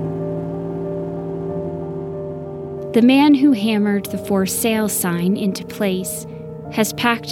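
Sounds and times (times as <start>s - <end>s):
pickup truck engine starting and humming: 0.0s - 5.4s
speech: 2.9s - 7.3s.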